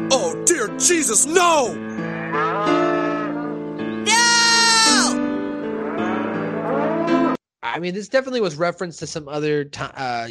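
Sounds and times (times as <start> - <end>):
speech: 0.1 - 2.7, 7.8 - 10.2
cow mooing: 1.8 - 3.8, 4.8 - 7.4.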